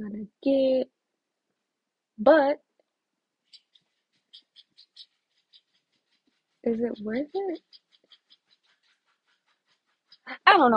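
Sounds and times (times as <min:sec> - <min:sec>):
speech: 0:00.0 - 0:01.0, 0:02.2 - 0:02.6, 0:06.6 - 0:07.8, 0:10.3 - 0:10.7
dog scratching: 0:03.5 - 0:10.3.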